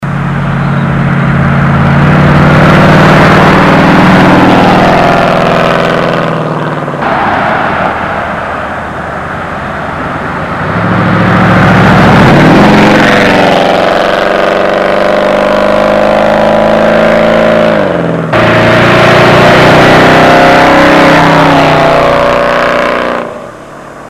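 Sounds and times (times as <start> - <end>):
Charger car driving by: 0.0 - 24.0.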